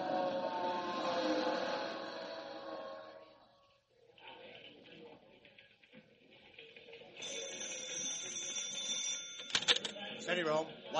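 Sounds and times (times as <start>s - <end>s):
busy noisy scene: 0.0s - 10.9s
fire alarm bell ringing for a four-alarm fire in a town: 7.2s - 10.0s
speech: 10.4s - 10.9s.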